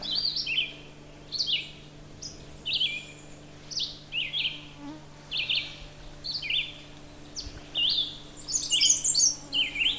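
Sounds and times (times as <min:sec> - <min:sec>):
American redstart warbler singing: 0:00.0 - 0:09.9
steady low hum: 0:00.0 - 0:09.9.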